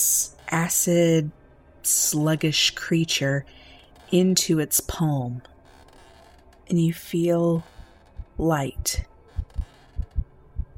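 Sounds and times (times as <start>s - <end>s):
faint hum: 0.0s - 10.7s
speech: 0.5s - 5.5s, 6.7s - 7.7s, 8.4s - 9.1s
low heartbeat: 7.8s - 10.7s.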